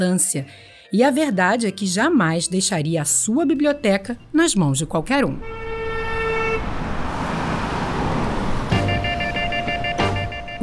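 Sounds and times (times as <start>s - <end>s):
speech: 0.0s - 5.6s
busy street traffic rumbling: 3.0s - 10.6s
car horn honking: 5.3s - 10.6s.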